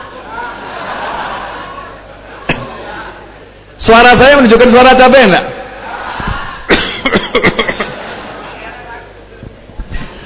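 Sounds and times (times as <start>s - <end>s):
laughter: 0.0s - 3.1s, 5.8s - 9.0s
speech: 3.9s - 5.5s
person fake coughing: 6.7s - 7.8s.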